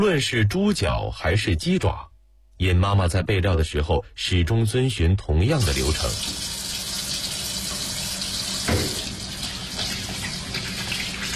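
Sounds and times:
speech: 0.0 - 6.5
running clean water rinsing chicken feet and pig trotters: 5.6 - 11.3
heavier water splash: 8.6 - 11.3.

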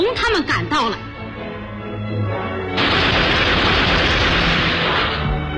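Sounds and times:
speech: 0.0 - 1.1
gunfire: 2.8 - 5.4.

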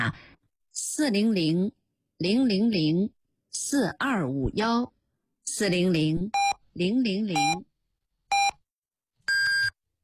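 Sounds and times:
speech: 0.0 - 0.3, 1.0 - 7.7
radio hourly time signal beeps marking six o'clock: 6.4 - 6.6, 7.4 - 7.6, 8.3 - 8.6, 9.3 - 9.8.

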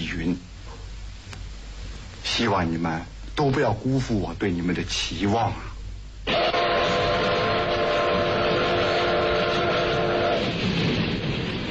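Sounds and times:
speech: 0.2 - 0.5, 2.4 - 5.7
speeding train roaring past pulling into a station: 6.2 - 11.6
speeding train's steady horn blaring: 6.3 - 10.6.

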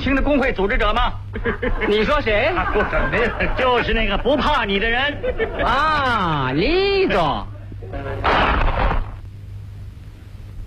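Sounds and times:
steady low hum: 0.0 - 10.6
speech: 0.1 - 8.8
laughter: 1.3 - 6.3
gunshot in a radio drama: 8.2 - 9.2.

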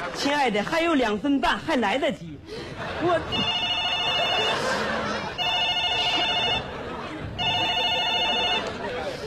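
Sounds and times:
speech: 0.2 - 3.6
laughter: 2.4 - 9.2
telephone ringing: 3.3 - 4.7, 5.4 - 6.8, 7.4 - 8.8.

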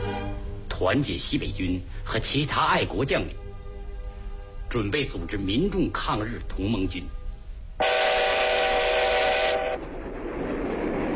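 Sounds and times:
speech: 0.8 - 3.4, 4.7 - 7.2
loud steady train whistle: 7.8 - 9.9
train rolling along the rails: 7.8 - 11.1.

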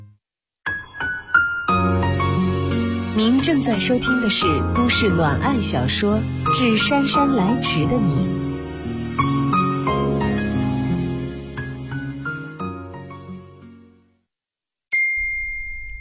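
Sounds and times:
soft melodic music bed: 0.7 - 14.0
speech: 3.2 - 8.4
text message notification ding: 15.0 - 15.9.

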